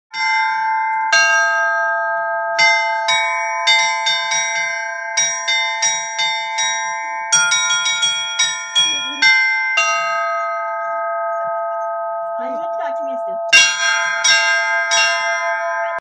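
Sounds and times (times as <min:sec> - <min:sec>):
Easter church bells ringing: 0:00.1 - 0:15.9.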